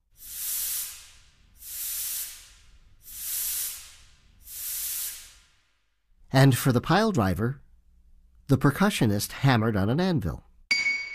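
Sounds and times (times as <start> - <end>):
hissing air from a scuba tank imitating steam: 0.0 - 5.8
speech: 6.3 - 7.6, 8.5 - 10.5.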